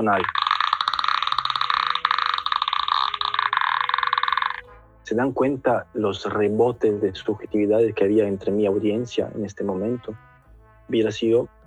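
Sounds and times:
speech: 0.0s - 0.4s, 5.1s - 10.3s, 10.9s - 11.6s
cansamama northern Brazilian folk instrument raspy croaking rattle: 0.0s - 11.6s.

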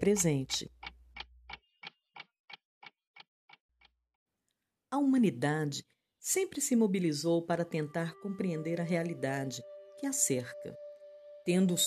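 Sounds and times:
speech: 0.0s - 0.8s, 4.9s - 10.8s, 11.4s - 11.8s
clock ticking: 0.0s - 4.0s.

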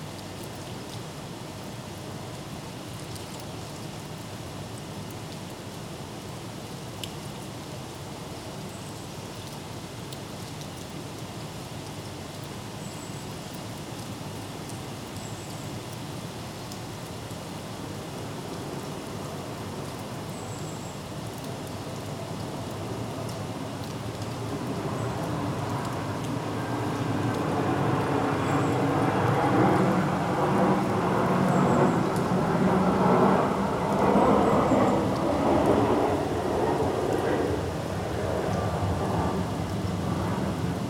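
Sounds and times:
light summer rain outside an office window in Leeds UK: 0.0s - 40.8s
aeroplane passing overhead: 21.3s - 40.8s.

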